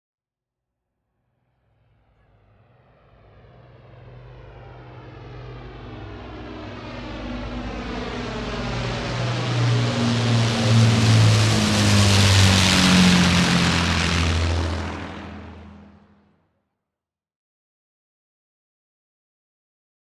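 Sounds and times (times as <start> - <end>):
Lancaster propeller plane flying overhead: 1.7 - 16.3.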